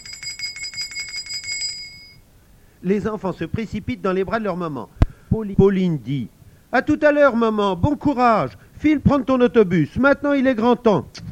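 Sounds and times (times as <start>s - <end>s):
school bell ringing as the school day ends: 0.0s - 2.2s
speech: 2.8s - 11.3s.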